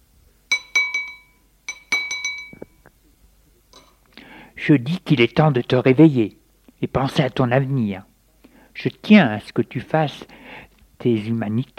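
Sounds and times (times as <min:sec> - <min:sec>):
spoon tapping on a plate: 0:00.5 - 0:02.8, 0:03.8 - 0:04.0
speech: 0:04.6 - 0:08.1, 0:08.8 - 0:11.7.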